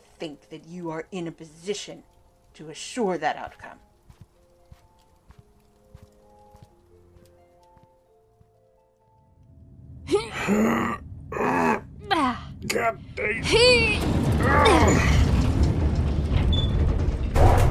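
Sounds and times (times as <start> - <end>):
speech: 0.2 - 3.9, 10.5 - 11.0, 12.7 - 15.1
sustained rumbling mechanical noise: 9.5 - 17.6
door creaking open: 13.8 - 17.6.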